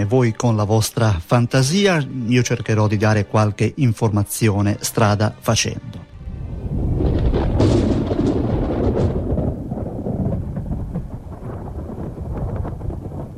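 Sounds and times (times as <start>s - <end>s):
speech: 0.0s - 6.1s
steady heavy roar of storm noise: 6.0s - 13.3s
deep rolling thunder: 6.2s - 13.3s.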